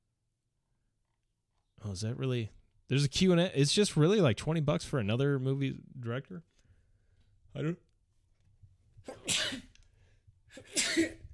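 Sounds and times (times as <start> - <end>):
speech: 1.8 - 6.5, 7.6 - 7.9, 10.5 - 11.2
man sneezing from allergies: 9.1 - 9.7, 10.6 - 11.3.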